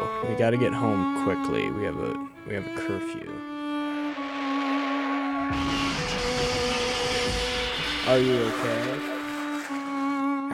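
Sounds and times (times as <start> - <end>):
speech: 0.2 - 3.5, 5.5 - 5.8, 8.1 - 9.1
humming engine tone: 3.4 - 10.3
car crash: 3.6 - 10.5.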